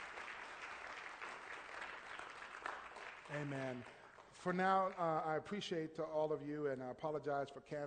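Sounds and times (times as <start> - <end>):
audience applause: 0.0 - 5.2
speech: 3.3 - 7.8.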